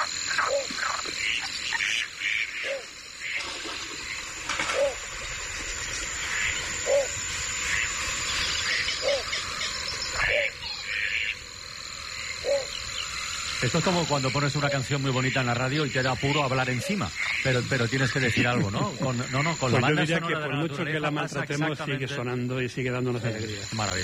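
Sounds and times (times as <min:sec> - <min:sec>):
bird or duck calls: 0:00.0 - 0:05.3, 0:06.1 - 0:13.6, 0:14.7 - 0:18.6
water hissing in a wetland: 0:00.0 - 0:19.7
frogs croaking in a wetland at dusk: 0:00.0 - 0:24.0
insects hissing in a wetland at dusk: 0:00.0 - 0:24.0
speech: 0:13.7 - 0:24.0.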